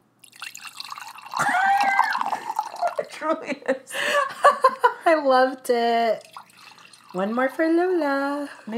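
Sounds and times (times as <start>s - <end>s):
wine pouring into a glass: 0.2s - 3.1s, 6.0s - 8.7s
speech: 3.2s - 6.3s, 7.1s - 8.7s.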